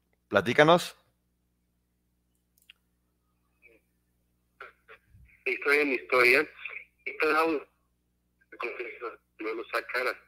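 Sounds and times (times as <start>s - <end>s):
speech: 0.3s - 1.0s, 5.6s - 6.6s, 7.2s - 7.7s, 8.6s - 10.2s
voice over a tinny phone line breaking up: 5.5s - 7.7s, 8.6s - 10.2s.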